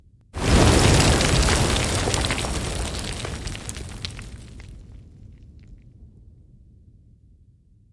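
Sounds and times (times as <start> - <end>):
explosion debris: 0.4 - 6.2.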